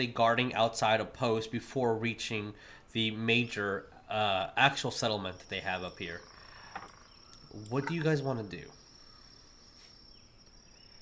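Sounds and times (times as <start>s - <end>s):
speech: 0.0s - 6.3s, 7.6s - 8.8s
cicadas and crickets chirping: 2.6s - 10.9s.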